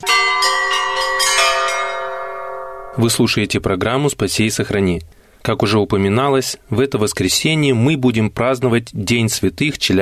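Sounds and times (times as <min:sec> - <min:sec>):
church bells pealing from a tall bell tower during a bell-ringers' festival in Chelyabinsk: 0:00.0 - 0:03.4
speech: 0:03.0 - 0:10.0.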